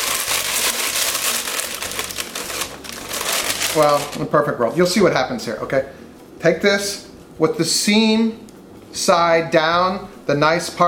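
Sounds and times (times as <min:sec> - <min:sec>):
stiff parchment paper crinkling and rustling into a bowl: 0:00.0 - 0:04.3
speech: 0:03.7 - 0:10.8.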